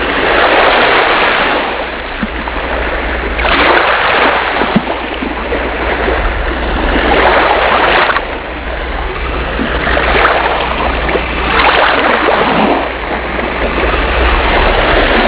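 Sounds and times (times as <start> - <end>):
waves: 0.0 - 15.2.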